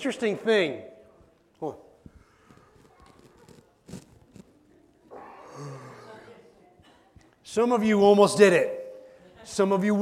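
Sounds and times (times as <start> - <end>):
speech: 0.0 - 0.9, 1.6 - 1.9, 7.5 - 8.8, 9.4 - 10.0
person yawning: 5.1 - 6.1.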